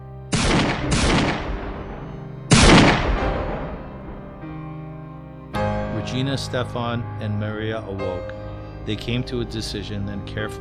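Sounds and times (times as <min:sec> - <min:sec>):
gunshots: 0:00.4 - 0:01.9, 0:02.5 - 0:04.0
speech: 0:06.0 - 0:10.6.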